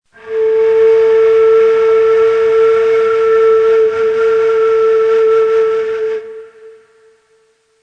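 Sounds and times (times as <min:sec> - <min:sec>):
ney flute playing in Rast mode: 0:00.1 - 0:07.8.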